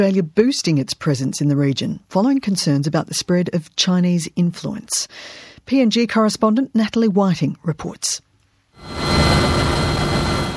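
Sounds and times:
speech: 0.0 - 9.7
Australian Defence Force military helicopter flying overhead during practice flights over Port Moresby: 8.8 - 10.5.

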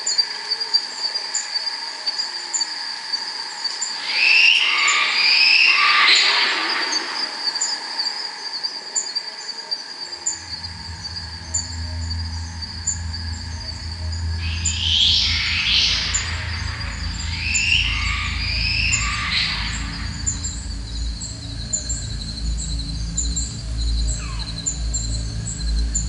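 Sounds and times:
insects chorus at night: 0.0 - 26.0
yellow-bellied glider gurgling shrieking calls at night: 4.0 - 7.5, 10.3 - 20.7, 24.2 - 24.5
low rumble: 10.3 - 26.0.

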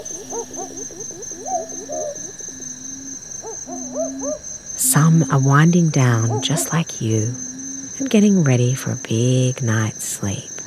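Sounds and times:
birds including a spotted nightjar calling at night: 0.0 - 4.7, 5.9 - 7.9
high insect trill: 0.0 - 10.6
speech: 3.6 - 10.5.

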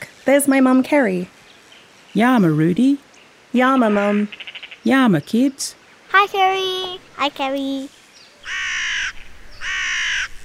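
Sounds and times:
speech: 0.3 - 1.4, 2.1 - 8.6
big black crow cawing in inland New South Wales: 8.4 - 10.4.

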